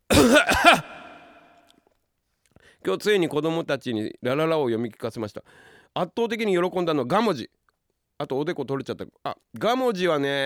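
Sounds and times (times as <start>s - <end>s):
person coughing: 0.1s - 1.5s
speech: 2.8s - 7.6s, 8.2s - 10.4s.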